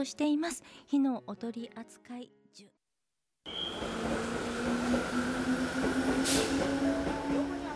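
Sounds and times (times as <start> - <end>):
speech: 0.0 - 2.8
train rolling into a station platform rumbling: 3.7 - 7.7
brief hiss of air or brakes: 6.1 - 6.9.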